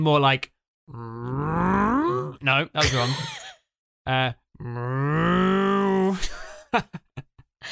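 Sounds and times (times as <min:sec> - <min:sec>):
speech: 0:00.0 - 0:03.4, 0:04.0 - 0:07.0
person imitating a cow's moo: 0:00.9 - 0:02.4, 0:04.1 - 0:06.2.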